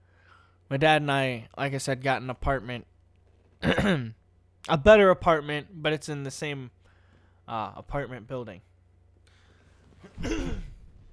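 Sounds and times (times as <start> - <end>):
speech: 0.7 - 2.9, 3.6 - 6.8, 7.5 - 8.7, 10.0 - 10.7
throat clearing to shift phlegm: 3.6 - 4.1, 10.0 - 10.9.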